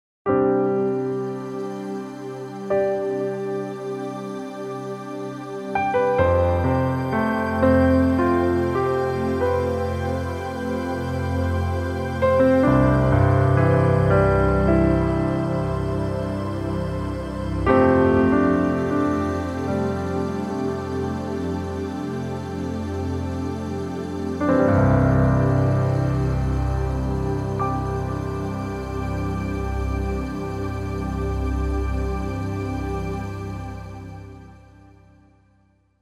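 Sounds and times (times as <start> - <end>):
piano pad: 0.3 - 35.1.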